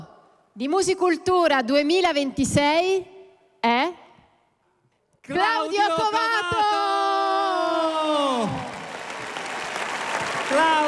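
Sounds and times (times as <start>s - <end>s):
speech: 0.6s - 4.0s, 5.3s - 6.8s
loud drawn-out cheering shout: 5.6s - 10.8s
audience applause: 7.9s - 10.8s.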